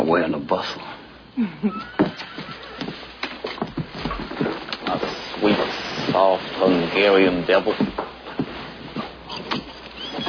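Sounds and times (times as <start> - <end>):
speech: 0.1 - 2.2, 6.2 - 8.1
horse whinnying: 1.7 - 3.1
hoof clops: 1.8 - 10.2
shuffling: 2.0 - 10.2.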